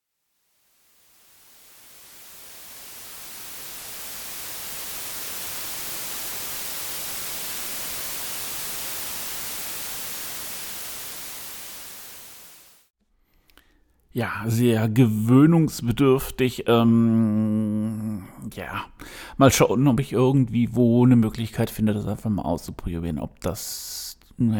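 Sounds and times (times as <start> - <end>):
steady hiss of white noise: 0.2 - 12.9
speech: 14.2 - 24.5.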